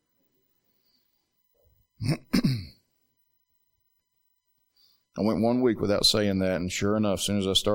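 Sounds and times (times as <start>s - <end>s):
speech: 2.0s - 2.2s, 5.2s - 7.7s
person in an audience clearing throat: 2.0s - 2.9s.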